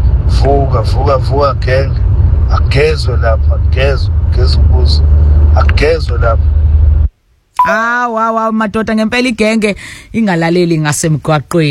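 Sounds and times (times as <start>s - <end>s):
low rumble of trucks on a road: 0.0s - 7.1s
speech: 0.4s - 6.6s, 7.6s - 11.7s.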